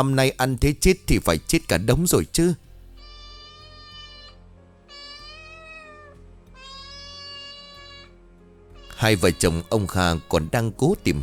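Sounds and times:
speech: 0:00.0 - 0:02.6, 0:09.0 - 0:11.2
cat meowing from the upper house: 0:03.0 - 0:08.2, 0:08.8 - 0:11.2.

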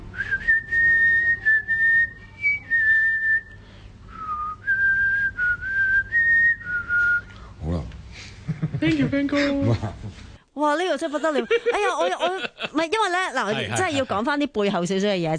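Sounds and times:
person whistling a tune: 0:00.2 - 0:07.3
laughter: 0:08.4 - 0:10.2, 0:11.0 - 0:14.2
speech: 0:08.8 - 0:10.0, 0:10.6 - 0:15.3.

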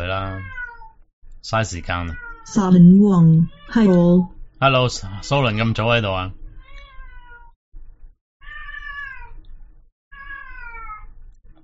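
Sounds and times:
cat meowing: 0:00.2 - 0:01.0, 0:03.4 - 0:03.9, 0:06.6 - 0:07.6, 0:08.4 - 0:09.4, 0:10.1 - 0:11.1
speech: 0:01.4 - 0:06.4.

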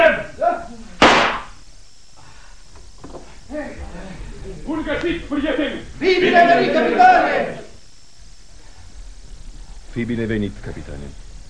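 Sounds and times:
gunshot in a radio drama about robbers: 0:01.0 - 0:01.6
speech: 0:04.7 - 0:07.6, 0:10.0 - 0:11.3.

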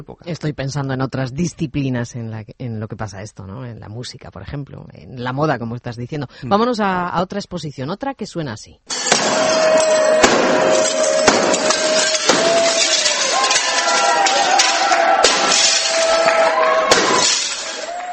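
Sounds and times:
speech: 0:00.0 - 0:11.6
glass panes smashed during an artist's performance: 0:08.9 - 0:18.1.

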